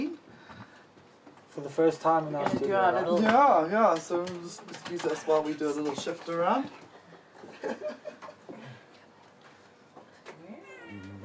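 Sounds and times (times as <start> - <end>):
speech: 1.6 - 6.8, 7.6 - 8.0
cat meowing in a studio: 10.5 - 11.2.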